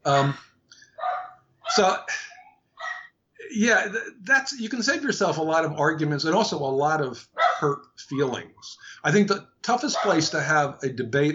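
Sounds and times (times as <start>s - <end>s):
speech: 0.0s - 0.5s, 1.7s - 2.3s, 3.5s - 11.3s
dog barking: 1.0s - 2.0s, 2.8s - 3.2s, 7.4s - 7.8s, 9.9s - 10.4s.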